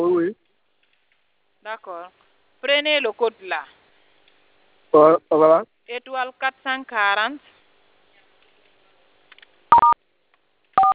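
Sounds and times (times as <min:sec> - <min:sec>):
speech: 0:01.7 - 0:03.8, 0:04.9 - 0:07.6
telephone keypad dual-tone beeps: 0:09.7 - 0:10.0, 0:10.8 - 0:10.9.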